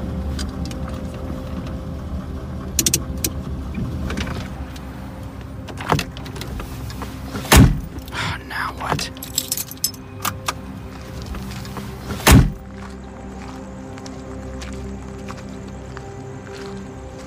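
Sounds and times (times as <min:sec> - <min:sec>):
car engine humming as the vehicle slows and pulls over: 0:00.0 - 0:17.2
heavy thump as the car stops: 0:07.4 - 0:08.0, 0:12.2 - 0:12.6.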